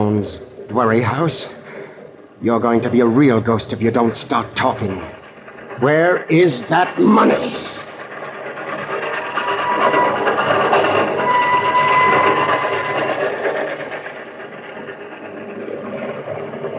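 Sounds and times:
speech: 0:00.0 - 0:01.6, 0:02.4 - 0:05.2, 0:05.8 - 0:07.8
train rumbling along the rails: 0:00.0 - 0:16.7
faint metallic squeals: 0:08.7 - 0:14.1.

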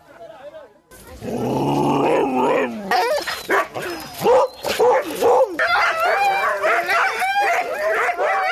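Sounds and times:
sled dogs barking and yelping excitedly before a race start: 0:02.4 - 0:08.5.

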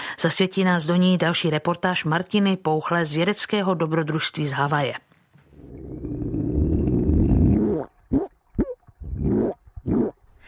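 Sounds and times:
speech: 0:00.2 - 0:05.1
Hawaiian monk seal croaking underwater: 0:05.5 - 0:10.3.

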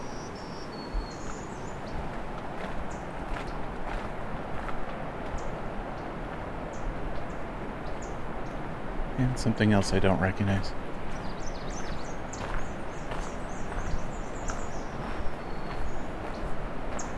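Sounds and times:
myrtle warbler giving sharp dry tick calls: 0:00.0 - 0:03.8, 0:05.2 - 0:06.1, 0:06.7 - 0:08.6, 0:10.6 - 0:17.1
steady hiss of outdoor noise: 0:00.0 - 0:17.1
speech: 0:09.2 - 0:10.9.

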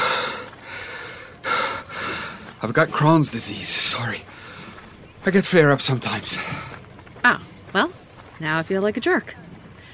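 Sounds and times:
heavy labored breathing from someone exerting themselves: 0:00.0 - 0:02.6, 0:04.2 - 0:05.1, 0:06.2 - 0:07.0
speech: 0:02.6 - 0:04.5, 0:05.2 - 0:09.4.

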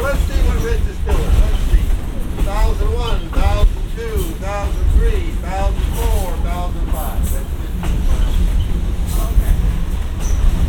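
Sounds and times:
train rolling along rails with deep continuous rumble: 0:00.0 - 0:10.6
faint metallic squeals from train wheels as brakes are applied: 0:10.2 - 0:10.6.

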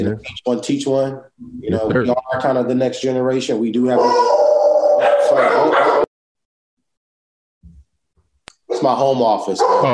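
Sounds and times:
speech: 0:00.0 - 0:06.0, 0:08.8 - 0:09.9
dog barking and whimpering in a home office: 0:03.9 - 0:06.1, 0:08.7 - 0:09.9.

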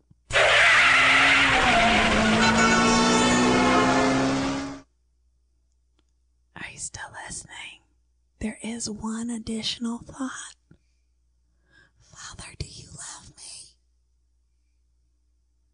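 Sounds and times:
car engine revving as car pulls away from roadside: 0:00.3 - 0:04.8
tire and road noise: 0:00.3 - 0:04.8
person whispering: 0:06.6 - 0:07.8, 0:12.1 - 0:13.8
speech: 0:08.4 - 0:10.6.

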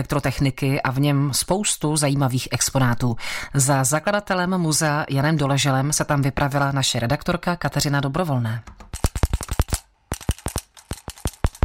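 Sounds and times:
speech: 0:00.0 - 0:08.8
old voltage tester clicking while measuring: 0:08.7 - 0:11.6.

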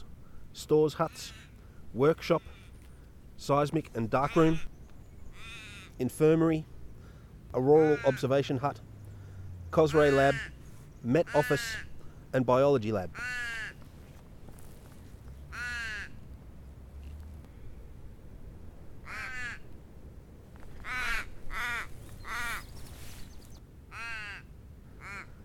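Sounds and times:
steady low outdoor rumble: 0:00.0 - 0:25.4
speech: 0:00.6 - 0:02.6, 0:03.4 - 0:04.7, 0:06.0 - 0:06.7, 0:07.5 - 0:08.9, 0:09.7 - 0:13.6
crows cawing in a casuarina tree: 0:01.1 - 0:01.7, 0:02.3 - 0:02.9, 0:05.3 - 0:06.0, 0:07.6 - 0:08.5, 0:09.9 - 0:10.6, 0:11.2 - 0:12.1, 0:13.1 - 0:13.8, 0:15.5 - 0:16.2, 0:19.0 - 0:19.7, 0:20.8 - 0:22.8, 0:23.9 - 0:25.4.

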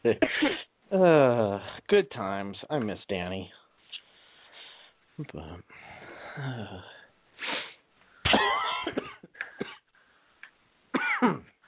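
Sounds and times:
speech: 0:00.0 - 0:00.7, 0:01.9 - 0:03.6, 0:05.2 - 0:07.5
person with the flu coughing into an open microphone: 0:00.1 - 0:00.7, 0:08.2 - 0:09.9, 0:11.0 - 0:11.6.

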